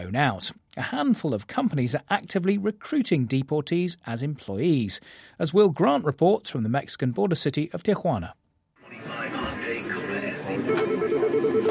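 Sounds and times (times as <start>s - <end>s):
speech: 0.0s - 8.4s
murmur of overlapping call center operator voices: 8.8s - 11.7s
faint telephone ringing tone: 8.9s - 11.7s.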